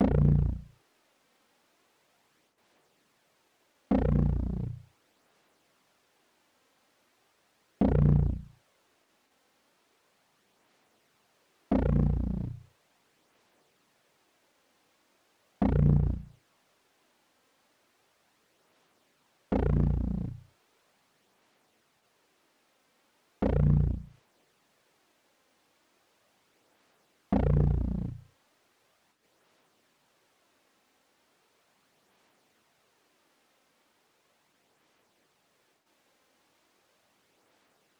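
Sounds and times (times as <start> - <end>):
growl bass loop in A sharp minor: 0.0 - 0.7, 3.9 - 4.8, 7.8 - 8.5, 11.7 - 12.6, 15.6 - 16.3, 19.5 - 20.4, 23.4 - 24.1, 27.3 - 28.2.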